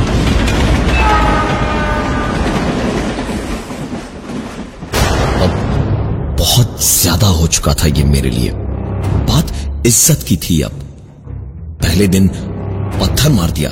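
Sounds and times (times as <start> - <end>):
clattering train wheels: 0.0 - 5.2
train pulling away along the tracks at a railway station: 0.0 - 8.4
train horn sounding: 0.9 - 2.8
speech: 7.5 - 10.9, 12.0 - 13.6.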